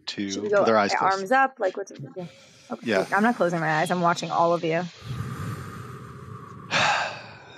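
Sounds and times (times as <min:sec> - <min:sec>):
low steady noise: 0:00.0 - 0:05.0
speech: 0:00.2 - 0:05.2
group inhaling and exhaling together: 0:02.2 - 0:03.9, 0:04.5 - 0:07.5.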